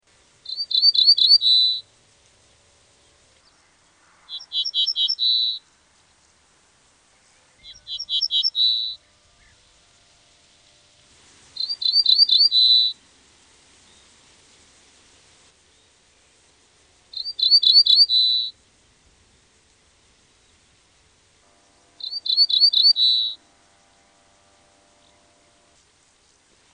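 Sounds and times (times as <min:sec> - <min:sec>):
ortolan bunting calling: 0:00.4 - 0:01.9, 0:03.4 - 0:05.7, 0:07.2 - 0:10.9, 0:11.6 - 0:13.0, 0:17.1 - 0:18.6, 0:21.5 - 0:25.8.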